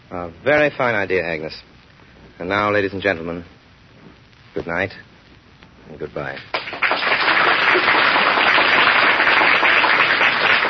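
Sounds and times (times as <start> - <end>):
speech: 0.1 - 1.7, 2.4 - 3.6, 4.6 - 5.1, 5.9 - 6.6
large studio audience applauding: 6.5 - 10.6.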